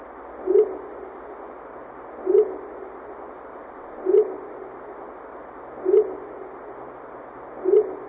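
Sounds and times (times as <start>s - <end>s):
constant hiss: 0.0s - 8.0s
low soft owl-like hoots: 0.4s - 1.0s, 2.2s - 2.8s, 4.0s - 4.7s, 5.8s - 6.5s, 7.6s - 8.0s.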